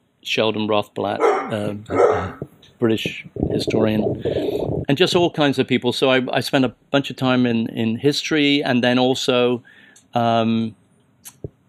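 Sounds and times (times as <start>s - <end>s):
speech: 0.2s - 11.4s
dog barking with sharp yaps: 1.2s - 2.4s.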